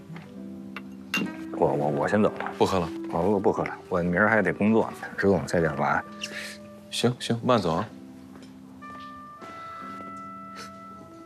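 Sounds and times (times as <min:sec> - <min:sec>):
glasses clinking in a toast: 0:00.8 - 0:01.5
speech: 0:01.6 - 0:08.0.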